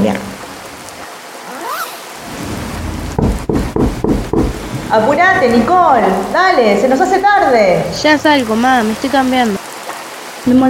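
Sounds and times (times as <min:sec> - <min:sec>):
speech: 0:00.0 - 0:00.4, 0:04.9 - 0:09.6, 0:10.4 - 0:10.6
steady rain hissing: 0:00.0 - 0:10.6
rising whoosh: 0:01.6 - 0:05.6
deep rhythmic rumbling bursts: 0:02.2 - 0:08.6.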